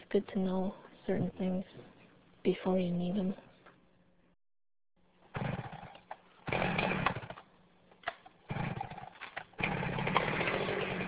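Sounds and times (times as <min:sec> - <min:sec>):
speech: 0:00.1 - 0:01.9, 0:02.5 - 0:03.5
chainsaw cutting wood during summer logging: 0:05.3 - 0:07.5, 0:08.1 - 0:11.0.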